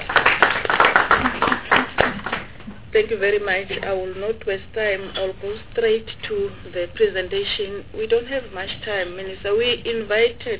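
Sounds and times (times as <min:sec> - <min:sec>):
audience clapping at a committee meeting: 0:00.0 - 0:02.7
speech: 0:03.0 - 0:10.5.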